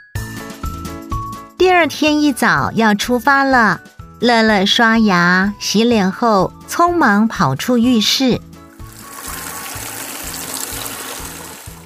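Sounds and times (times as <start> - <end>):
speech: 1.8 - 8.5
water running from a bathroom faucet not turned off tightly: 8.6 - 11.8.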